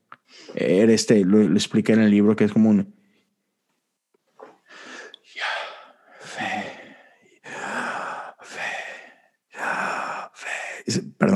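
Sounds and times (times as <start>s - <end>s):
speech: 0.5s - 3.0s
person breathing in and out deliberately: 4.6s - 10.9s.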